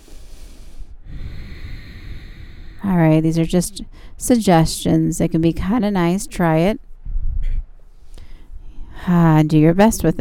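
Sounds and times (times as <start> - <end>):
throaty hissing exhale with constricted throat during yoga belly breathing: 0.0 - 2.8
speech: 2.9 - 6.9, 9.0 - 10.2.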